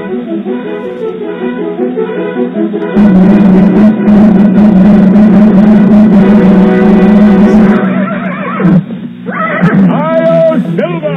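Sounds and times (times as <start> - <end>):
brassy orchestral western radio theme music: 0.0 - 8.8
horse whinnying: 7.8 - 10.1.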